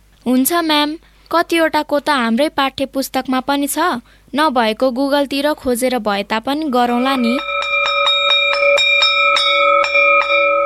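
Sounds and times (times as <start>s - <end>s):
speech: 0.2s - 7.5s
school bell ringing at the end of a classroom lesson: 6.6s - 10.6s.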